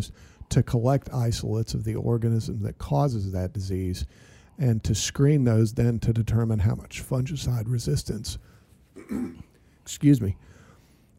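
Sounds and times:
speech: 0.0s - 10.5s
person coughing during a conversation: 9.0s - 9.6s.

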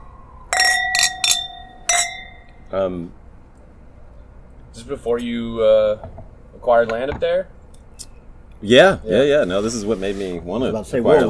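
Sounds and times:
wine glasses clinking in a toast: 0.5s - 2.7s
speech: 2.7s - 3.2s, 4.8s - 7.6s, 8.6s - 11.2s.

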